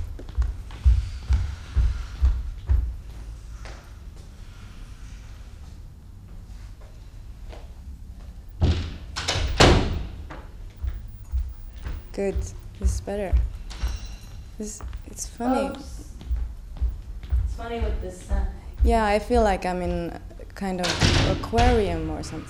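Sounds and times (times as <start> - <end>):
soft low thumps and handling knocks: 0.0 - 3.8, 8.5 - 20.2
door slamming shut with a sharp rush: 8.6 - 10.2, 20.8 - 22.4
speech: 12.2 - 13.6, 14.6 - 16.1, 17.6 - 22.4.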